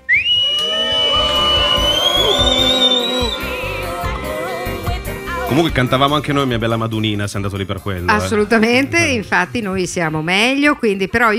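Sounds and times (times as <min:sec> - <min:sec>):
audience whistling in disapproval: 0:00.0 - 0:04.8
speech: 0:05.5 - 0:11.3.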